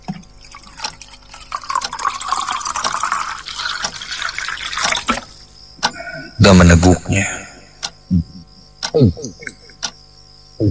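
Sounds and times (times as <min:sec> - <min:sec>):
water pouring into a prepared glass in a kitchen: 0:00.4 - 0:05.3
speech: 0:06.4 - 0:07.4, 0:08.1 - 0:08.3, 0:09.0 - 0:09.4.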